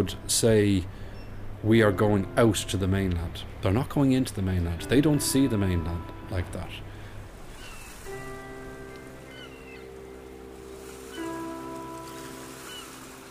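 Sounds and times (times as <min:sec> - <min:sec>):
speech: 0:00.0 - 0:01.0, 0:01.6 - 0:06.9
sea waves washing: 0:06.5 - 0:13.3
faint bird calls: 0:07.0 - 0:10.3, 0:10.9 - 0:11.6, 0:12.2 - 0:13.2.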